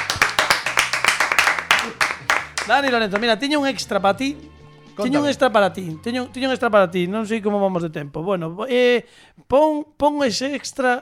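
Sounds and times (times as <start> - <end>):
audience applauding: 0.0 - 3.3
speech: 2.7 - 10.9.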